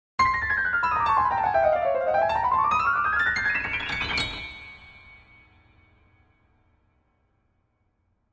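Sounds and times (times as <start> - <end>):
piano cue: 0.2 - 6.6.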